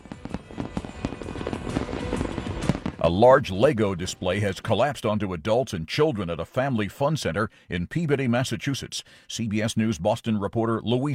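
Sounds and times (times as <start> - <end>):
fireworks show popping and banging: 0.0 - 4.3
speech: 3.0 - 11.1.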